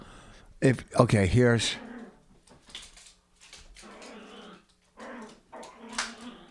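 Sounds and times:
speech: 0.6 - 1.9
female dog growling and whining playfully in a house: 1.8 - 2.3, 3.8 - 6.4.

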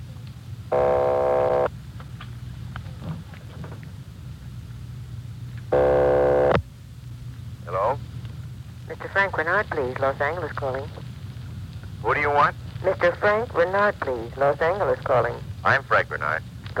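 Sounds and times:
steady low electrical hum: 0.0 - 16.7
telephone ringing down the line on a long-distance call: 0.7 - 1.7, 5.8 - 6.6
speech: 9.2 - 11.0, 12.0 - 16.7.

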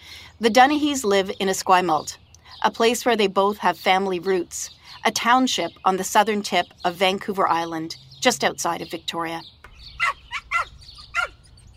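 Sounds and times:
speech: 0.4 - 10.2
small dog barking in welcome: 10.0 - 11.4.

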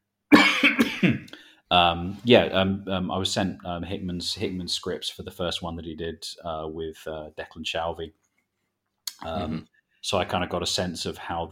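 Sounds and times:
person coughing: 0.3 - 1.3, 9.2 - 9.6
speech: 1.0 - 8.2, 9.2 - 11.4.

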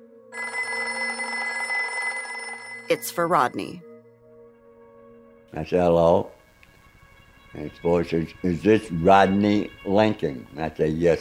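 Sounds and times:
telephone bell ringing loudly: 0.3 - 3.8
speech: 2.9 - 3.9, 5.5 - 6.4, 7.6 - 11.1.

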